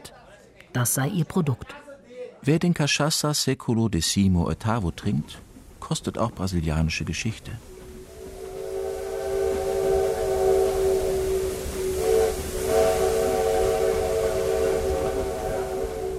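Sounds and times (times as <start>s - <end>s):
speech: 0.7s - 1.8s, 2.4s - 7.7s
constant hiss and low rumble: 4.0s - 16.1s
small tourist train multi-tone whistle arriving at a station: 7.6s - 16.1s.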